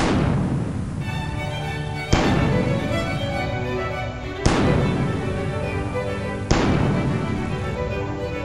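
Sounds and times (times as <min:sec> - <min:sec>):
heavy cannon blasts with ringing decay: 0:00.0 - 0:01.0, 0:02.1 - 0:02.7, 0:04.4 - 0:04.9, 0:06.5 - 0:07.0
theme song: 0:01.0 - 0:08.4.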